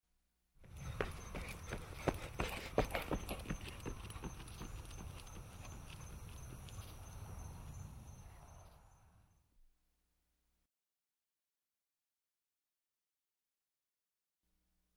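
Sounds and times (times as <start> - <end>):
running footsteps moving left to right: 0.6 - 8.0.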